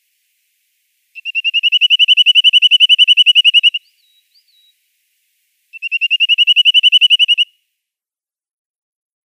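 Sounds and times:
Corsican nuthatch giving fast even trill of clipped high notes: 1.2 - 3.8, 5.7 - 7.5.

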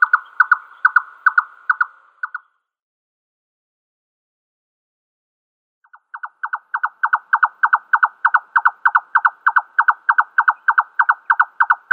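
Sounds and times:
male red-necked nightjar display song of rapid hollow paired knocks: 0.0 - 2.4, 5.9 - 11.9.

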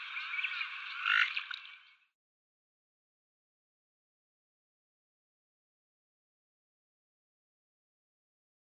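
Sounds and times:
purple swamphen hoarse nasal squawk: 1.0 - 1.5.

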